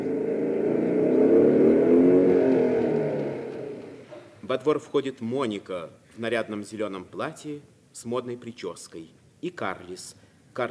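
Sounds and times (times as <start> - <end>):
motorcycle engine rumbling as it pulls up to a gate: 0.0 - 4.4
speech: 4.5 - 10.6.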